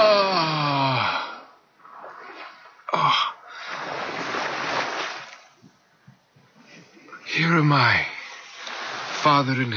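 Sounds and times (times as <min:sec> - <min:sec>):
low rumbles and soft splashes of retreating water: 0:00.0 - 0:05.9, 0:06.6 - 0:09.7
wave washing onto a beach: 0:01.8 - 0:05.7, 0:06.6 - 0:09.7
speech: 0:07.6 - 0:08.1, 0:09.2 - 0:09.7.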